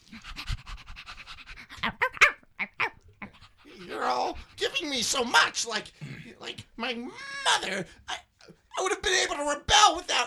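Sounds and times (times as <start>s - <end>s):
dog huffing and whining: 0.0s - 4.8s
dog panting: 0.0s - 6.8s
speech: 4.0s - 8.0s, 8.8s - 10.2s.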